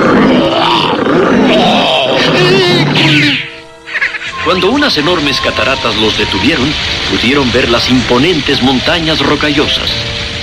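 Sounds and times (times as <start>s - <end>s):
grizzly bear roaring: 0.0s - 3.5s
speech: 4.5s - 10.2s.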